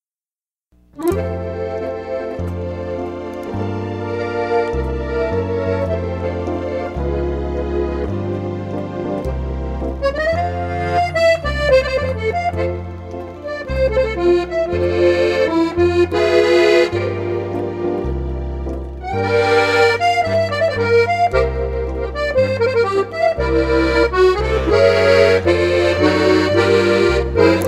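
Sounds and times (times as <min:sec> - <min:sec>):
French band playing: 0:01.0 - 0:27.6.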